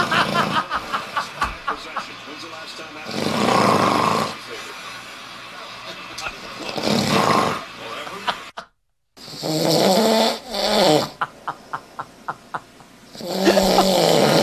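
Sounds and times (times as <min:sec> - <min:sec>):
man snoring: 0:00.0 - 0:00.7, 0:03.0 - 0:04.4, 0:06.7 - 0:07.7, 0:09.2 - 0:11.2, 0:13.2 - 0:14.4
laughter: 0:00.0 - 0:02.4, 0:07.9 - 0:08.7, 0:11.2 - 0:14.1.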